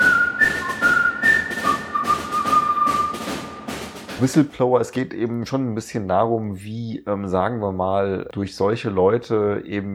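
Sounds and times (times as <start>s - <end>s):
whistled melody: 0.0s - 4.0s
steady drumbeats in a song: 0.0s - 5.1s
speech: 4.2s - 9.9s.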